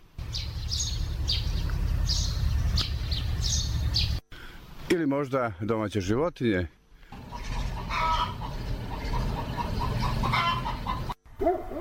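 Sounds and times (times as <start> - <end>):
steady low rumbling hum: 0.0 - 4.2, 7.2 - 11.1
birds chirping in woodland groves in chilly weather: 0.0 - 4.9, 6.9 - 11.6
speech: 4.9 - 6.8.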